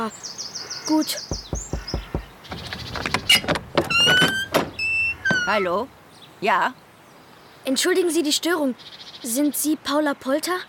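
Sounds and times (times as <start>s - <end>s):
speech: 0.0s - 1.6s, 5.5s - 6.8s, 7.6s - 10.6s
knocking on a door: 1.3s - 3.9s
door creaking and squeaking open: 1.3s - 5.9s.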